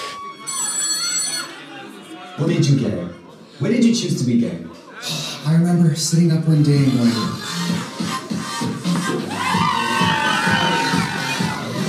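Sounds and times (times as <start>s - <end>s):
soft murmur of noise: 0.0s - 11.8s
telephone ringing with electronic warbling tone: 0.4s - 1.6s
speech: 2.4s - 7.8s.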